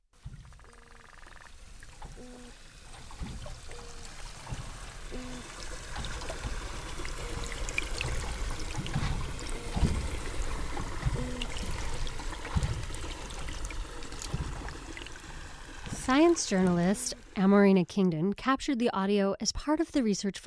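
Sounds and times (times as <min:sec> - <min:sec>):
toadfish and cusk eel hoots and grunts underwater in the Bass River off Cape Cod: 0:00.4 - 0:02.9, 0:03.5 - 0:16.0
speech: 0:16.2 - 0:20.4.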